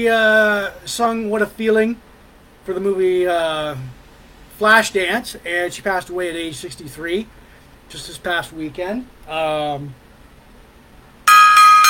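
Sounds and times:
speech: 0:00.0 - 0:04.0, 0:04.6 - 0:10.0
loud bright metallic gong ringing: 0:11.3 - 0:11.8.

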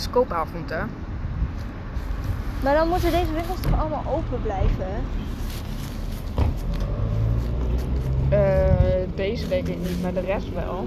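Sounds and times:
rumble of street traffic with cars passing: 0:00.0 - 0:10.8
speech: 0:00.1 - 0:01.1, 0:02.6 - 0:05.4, 0:08.3 - 0:10.8
brief thump: 0:03.6 - 0:03.9, 0:06.3 - 0:06.7.

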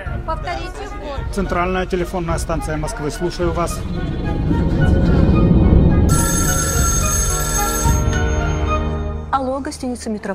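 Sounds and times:
speech: 0:00.3 - 0:05.5, 0:09.6 - 0:10.3
dense rumbling background: 0:01.2 - 0:08.5
telephone ringing during a call: 0:06.1 - 0:09.1.

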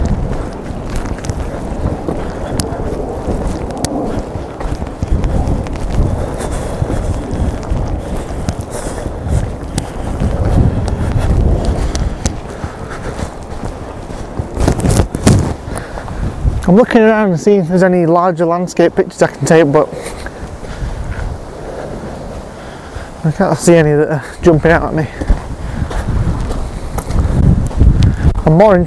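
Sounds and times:
strong wind roaring across an exposed hilltop buffeting the microphone: 0:00.0 - 0:28.8
speech: 0:16.7 - 0:20.2, 0:23.2 - 0:25.3, 0:28.5 - 0:28.8.

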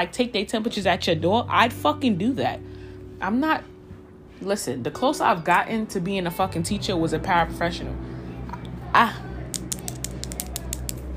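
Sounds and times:
speech: 0:00.0 - 0:03.7, 0:04.4 - 0:08.1, 0:09.0 - 0:09.2
fingernails clicking: 0:09.5 - 0:11.0.

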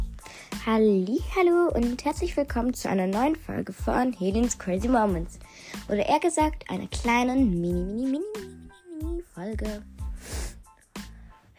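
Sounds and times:
speech: 0:00.6 - 0:08.6, 0:09.4 - 0:10.4
wet nasal sniffing from a stuffy nose with a cold: 0:05.4 - 0:05.9, 0:09.9 - 0:11.4.

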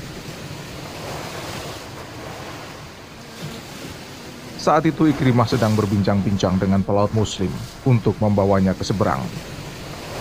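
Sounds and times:
ocean surf washing onto the shore of the Red Sea: 0:00.0 - 0:10.2
wind: 0:00.0 - 0:10.2
speech: 0:04.6 - 0:09.6.

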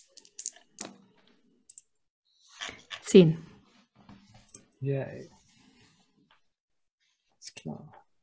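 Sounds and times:
dice rolled during a tabletop role-playing game: 0:00.0 - 0:01.0
speech: 0:03.1 - 0:03.5, 0:04.8 - 0:05.4, 0:07.6 - 0:08.0.

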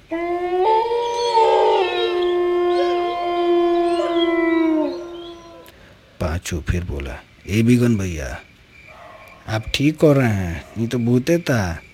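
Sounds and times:
dog howling: 0:00.0 - 0:05.7, 0:08.9 - 0:09.5
speech: 0:06.5 - 0:08.5, 0:09.5 - 0:11.9.

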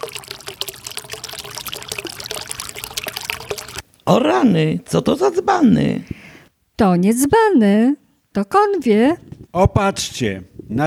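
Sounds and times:
rushing water: 0:00.0 - 0:03.8
speech: 0:04.1 - 0:06.2, 0:06.8 - 0:10.8.

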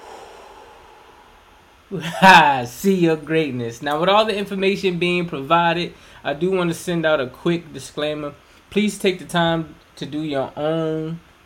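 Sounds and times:
deep breathing during a guided breathing exercise: 0:00.0 - 0:01.9
speech: 0:01.9 - 0:11.3.

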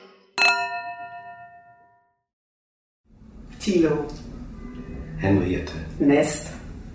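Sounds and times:
theatre chime signalling performance start: 0:00.4 - 0:01.8
speech: 0:03.6 - 0:04.3, 0:05.2 - 0:06.6.

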